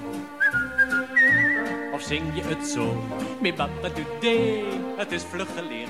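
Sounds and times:
person whistling a short bright melody: 0:00.4 - 0:02.1
speech: 0:02.0 - 0:05.8.

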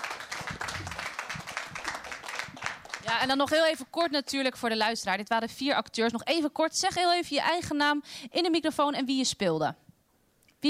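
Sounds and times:
studio audience applause: 0:00.0 - 0:03.3
speech: 0:03.1 - 0:09.8.

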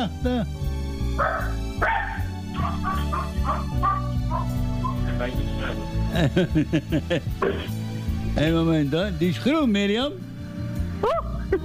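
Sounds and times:
laughter: 0:00.0 - 0:00.5, 0:02.5 - 0:07.7
speech: 0:00.0 - 0:00.6, 0:01.2 - 0:02.0, 0:05.2 - 0:07.8, 0:08.4 - 0:10.3, 0:11.0 - 0:11.6
dog barking with short yappy barks: 0:01.2 - 0:05.4.

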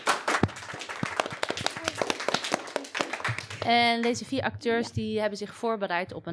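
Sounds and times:
audience applauding: 0:00.0 - 0:04.2
speech: 0:03.6 - 0:06.3.

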